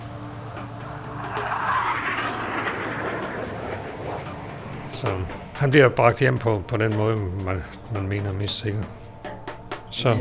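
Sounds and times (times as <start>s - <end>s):
large military transport propeller plane droning overhead: 0.0s - 7.4s
speech: 5.0s - 9.0s, 9.9s - 10.1s.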